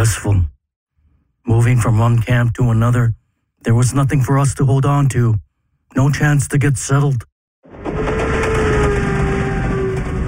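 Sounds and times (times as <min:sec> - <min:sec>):
speech: 0:00.0 - 0:00.5, 0:01.5 - 0:07.3
moving train carrying people rumbling: 0:07.7 - 0:10.2.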